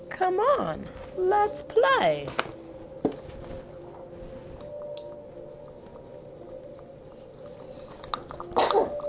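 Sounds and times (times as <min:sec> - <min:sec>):
low steady hum: 0:00.0 - 0:09.0
speech: 0:00.1 - 0:02.6
person sneezing: 0:08.6 - 0:09.0.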